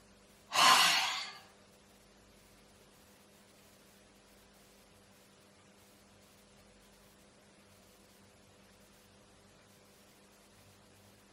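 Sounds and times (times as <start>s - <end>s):
deep inhalation during breathing exercise: 0.5s - 1.4s.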